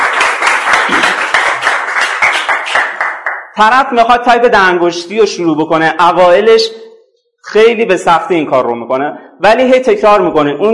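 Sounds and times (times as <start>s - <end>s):
audience applause: 0.0s - 3.4s
speech: 3.6s - 6.8s, 7.4s - 10.7s.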